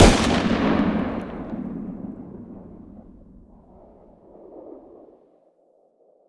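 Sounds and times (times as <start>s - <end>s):
distant 50 AE pistol firing outdoors: 0.0s - 3.6s.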